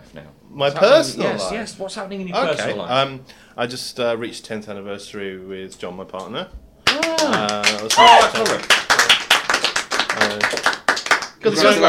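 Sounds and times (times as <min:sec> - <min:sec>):
speech: 0:00.2 - 0:08.8, 0:10.3 - 0:10.8, 0:11.4 - 0:11.8
lively clapping: 0:06.8 - 0:11.8
people whooping or cheering: 0:06.9 - 0:08.6.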